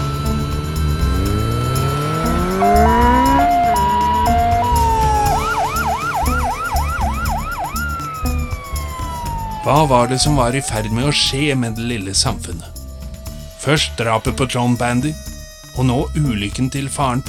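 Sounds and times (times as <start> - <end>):
engine rumble: 0.0 - 17.2
ambulance siren alternating two tones and yelping: 1.1 - 12.4
speech: 9.7 - 12.7, 13.6 - 17.2.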